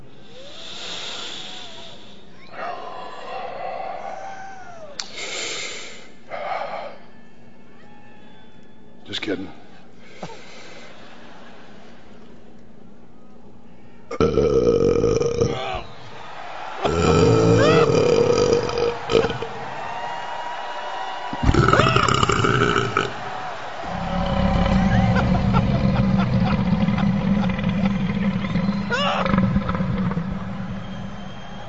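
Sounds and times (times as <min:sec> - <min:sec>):
speech: 0:09.1 - 0:09.6
laughter: 0:10.2 - 0:12.5, 0:15.7 - 0:19.8, 0:20.8 - 0:31.6
loud deliberate guttural belches: 0:14.1 - 0:15.9, 0:16.8 - 0:19.8, 0:21.3 - 0:31.6.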